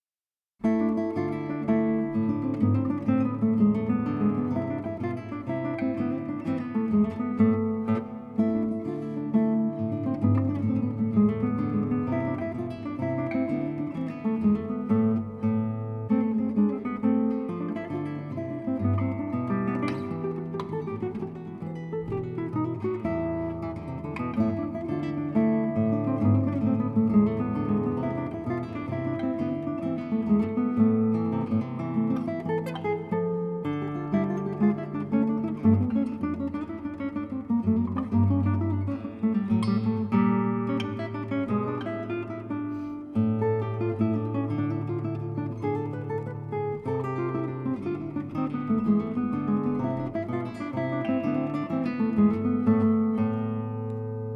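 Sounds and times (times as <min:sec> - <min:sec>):
classical guitar suite in A minor: 0:00.6 - 0:54.3.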